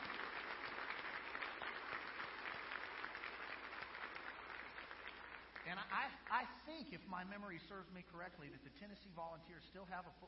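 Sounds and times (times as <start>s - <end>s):
congregation applauding: 0.0s - 6.4s
speech: 5.7s - 10.2s.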